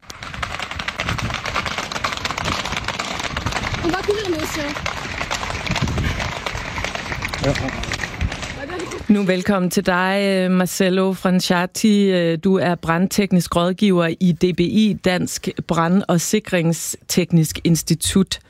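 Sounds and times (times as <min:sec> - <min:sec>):
herd of horses galloping in Biscarrosse fleeing fire smoke: 0:00.0 - 0:18.4
horses snorting and whinnying: 0:00.2 - 0:09.1
speech: 0:03.8 - 0:05.0, 0:07.4 - 0:08.0, 0:08.9 - 0:18.4.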